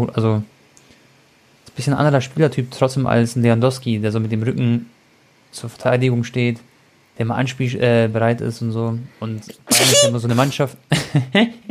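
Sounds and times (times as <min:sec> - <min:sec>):
speech: 0:00.0 - 0:00.5, 0:01.8 - 0:11.7
sneeze from hay fever: 0:09.5 - 0:10.6.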